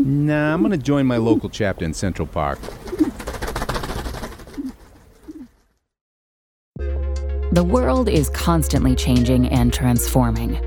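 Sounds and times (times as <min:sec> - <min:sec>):
pigeons cooing: 0:00.0 - 0:01.8, 0:02.5 - 0:05.6
speech: 0:00.0 - 0:03.0, 0:07.6 - 0:10.6
outdoor noise: 0:00.0 - 0:05.8.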